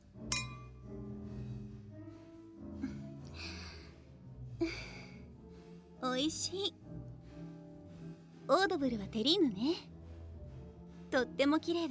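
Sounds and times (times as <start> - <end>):
champagne glasses clinking in a toast: 0.3 - 0.8
speech: 6.1 - 6.8, 8.5 - 9.9, 11.1 - 11.8.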